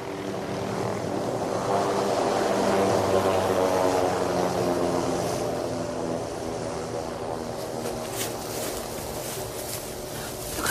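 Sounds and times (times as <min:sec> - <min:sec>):
helicopter rotor and engine droning: 0:00.0 - 0:10.6.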